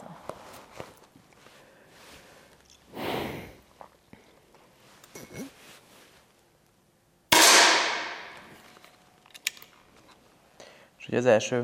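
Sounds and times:
air rifle firing a pellet at a target on a shooting range: 7.3 - 8.4
speech: 11.1 - 11.6.

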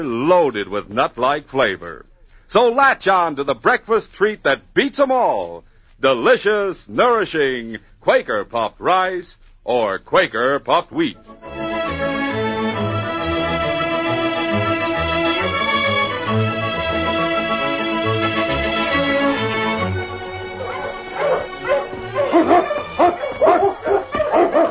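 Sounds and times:
speech: 0.0 - 11.6
sustained orchestral music: 11.0 - 24.6
sled dog team barking on frozen surface of the Klondike: 20.0 - 24.6.

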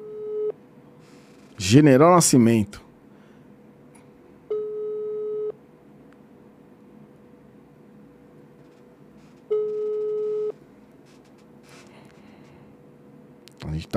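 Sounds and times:
telephone busy signal heard while placing a call: 0.0 - 0.5, 4.5 - 5.6, 9.5 - 10.6
speech: 1.6 - 2.8.

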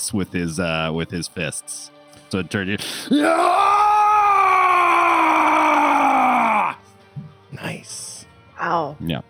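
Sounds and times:
speech: 0.0 - 3.8, 7.6 - 9.2
person roaring in frustration and rage: 3.1 - 6.8.

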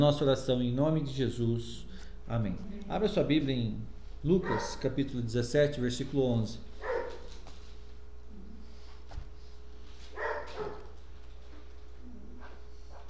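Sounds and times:
speech: 0.0 - 6.7
steady low hum: 0.0 - 13.0
dog barking: 4.4 - 5.0, 6.8 - 7.4, 10.1 - 11.0
dog whining or yelping: 6.8 - 7.4, 10.2 - 10.9.

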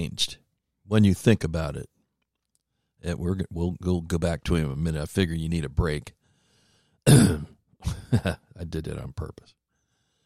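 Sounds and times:
speech: 0.0 - 1.9, 3.0 - 6.2, 7.0 - 9.6
loud harsh throat clearing: 7.1 - 8.2
brief cough: 7.1 - 8.4.

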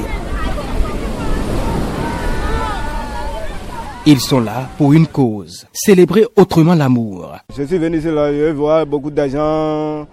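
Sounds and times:
rough ocean surf breaking on a sandy beach: 0.0 - 10.1
speech: 4.1 - 10.1.

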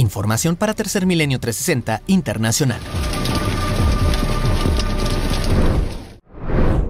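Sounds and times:
speech: 0.1 - 3.4
low rumbles: 0.6 - 6.8
hailstorm falling on an open-air amphitheater: 1.8 - 6.2.

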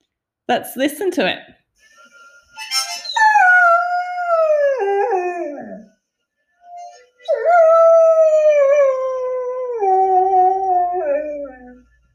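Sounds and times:
speech: 0.5 - 1.6
Groodle dog howling: 3.0 - 5.9, 7.2 - 11.8.

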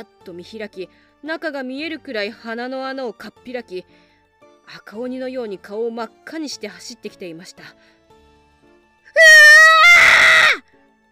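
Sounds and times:
speech: 0.0 - 4.1, 4.7 - 8.0
person screaming in fear while running from a pursuing man: 9.2 - 10.6.

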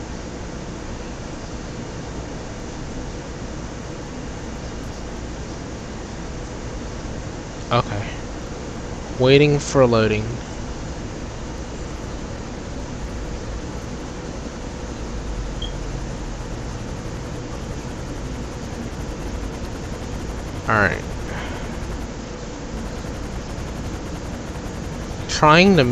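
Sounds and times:
video game helicopter droning overhead: 0.0 - 25.9
speech: 7.7 - 8.2, 9.2 - 10.5, 25.4 - 25.9
sharp chirp: 15.5 - 16.0.

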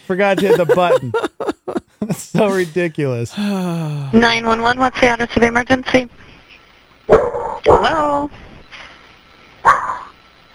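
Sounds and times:
speech: 0.1 - 6.3, 7.1 - 8.4
laughter: 0.4 - 2.4
dog barking on a 911 emergency call: 9.6 - 10.1.

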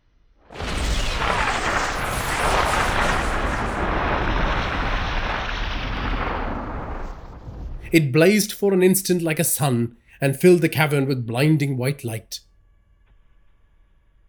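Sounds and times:
magical spherical construct exploding in a cavern: 0.6 - 7.8
speech: 7.9 - 12.5.

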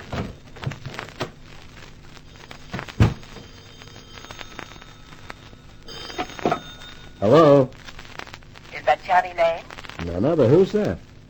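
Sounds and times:
footsteps: 0.0 - 8.4
telephone bell ringing inside a penthouse: 2.3 - 7.7
penthouse door being opened in a hurry: 3.0 - 3.4
speech: 7.2 - 7.7, 9.1 - 11.1.

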